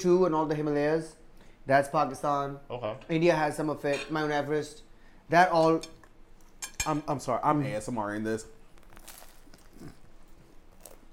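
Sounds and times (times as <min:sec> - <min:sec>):
speech: 0:00.0 - 0:06.0, 0:06.8 - 0:08.6
crusty bread being bitten and chewed: 0:08.6 - 0:11.1.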